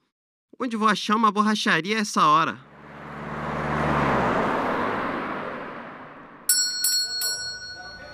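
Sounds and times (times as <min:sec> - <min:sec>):
speech: 0:00.6 - 0:02.7
car engine and road rumble driving over a road full of potholes: 0:02.7 - 0:06.4
bright ringing bell chimes: 0:06.5 - 0:08.1.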